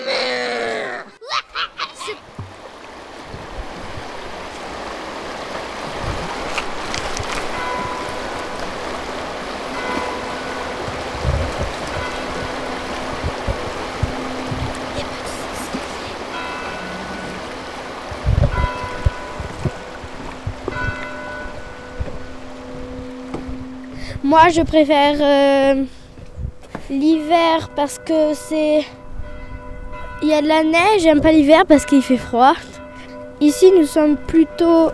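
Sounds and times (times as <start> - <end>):
steady dense rain hissing: 1.6 - 24.4
low thumps: 2.3 - 27.9
wind rushing: 3.2 - 27.8
speech: 24.3 - 26.0, 26.9 - 29.0, 30.3 - 32.8, 33.4 - 34.9.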